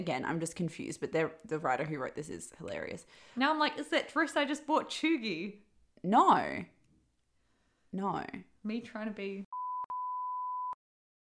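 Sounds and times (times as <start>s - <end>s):
speech: 0.0s - 6.8s, 7.9s - 9.4s
electronic censor bleep: 9.5s - 10.8s.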